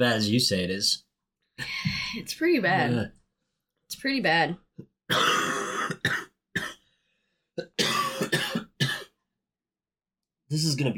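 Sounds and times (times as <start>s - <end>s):
speech: 0.0s - 1.0s, 1.6s - 3.2s, 3.9s - 5.4s, 10.5s - 10.9s
person in a harsh raspy coughing fit: 5.1s - 6.8s, 7.6s - 9.2s.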